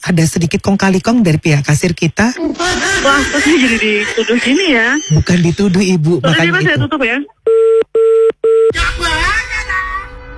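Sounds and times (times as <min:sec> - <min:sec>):
slight noise: 0:00.0 - 0:10.3
speech: 0:00.1 - 0:09.8
laughter: 0:02.4 - 0:04.9
electronic telephone dialing tones of a call: 0:07.5 - 0:08.7.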